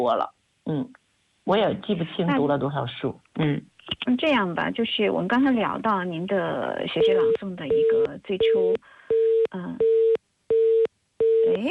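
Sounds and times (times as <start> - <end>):
speech: 0.0 - 10.1, 11.4 - 11.6
telephone busy tone beeps on a faulty call line: 7.0 - 11.6.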